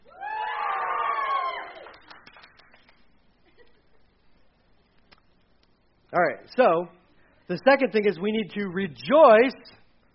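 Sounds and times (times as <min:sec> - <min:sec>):
audience cheering, whooping and hollering: 0:00.0 - 0:02.5
scattered hand claps: 0:01.8 - 0:03.0
speech: 0:06.1 - 0:09.8.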